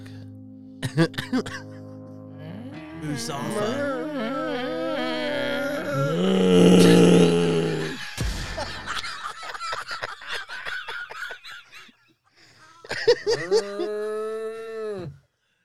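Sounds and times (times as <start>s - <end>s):
person laughing choppily: 0.8s - 1.8s, 3.3s - 11.9s, 12.8s - 14.0s
speech: 1.0s - 1.7s, 3.0s - 4.8s, 6.2s - 7.0s
person imitating a cow mooing: 3.0s - 8.0s, 13.4s - 15.2s.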